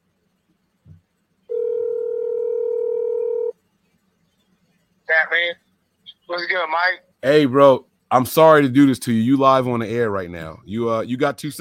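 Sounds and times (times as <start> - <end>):
outgoing phone call ringing tone: 1.5 - 3.5
voice on the phone line: 5.1 - 7.0
speech: 5.3 - 5.7, 6.3 - 11.5.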